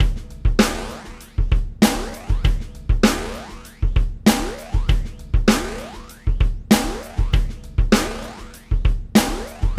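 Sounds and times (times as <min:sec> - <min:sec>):
snare drum gallop: 0:00.0 - 0:09.7.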